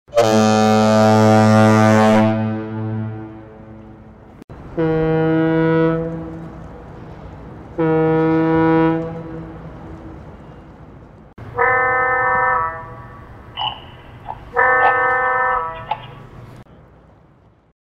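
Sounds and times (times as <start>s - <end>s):
low, mid and high foghorns: 0.1s - 10.8s, 11.4s - 13.3s, 14.5s - 16.1s.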